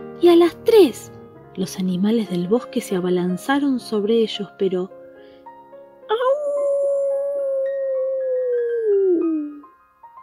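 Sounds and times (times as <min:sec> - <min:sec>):
speech: 0:00.2 - 0:05.0
long eerie wavering howl: 0:06.1 - 0:09.6.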